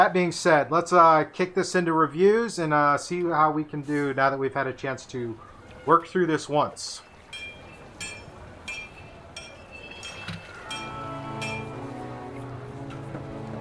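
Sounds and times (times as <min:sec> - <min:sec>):
speech: 0:00.0 - 0:07.1
bright ringing clinks like glasses tapping together: 0:07.0 - 0:12.2.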